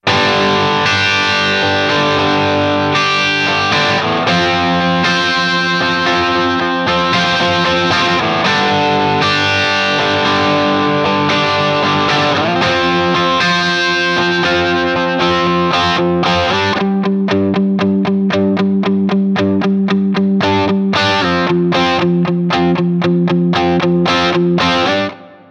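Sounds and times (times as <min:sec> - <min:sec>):
dry rhythm guitar: 0:00.0 - 0:25.4.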